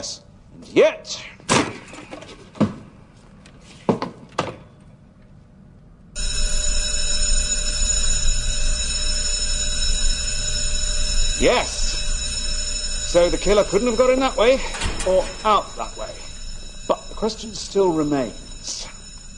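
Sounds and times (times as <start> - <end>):
speech: 0.0 - 1.5, 11.4 - 11.8, 13.1 - 16.2, 17.2 - 18.8
loud piercing fire door alarm ringing: 6.2 - 19.3.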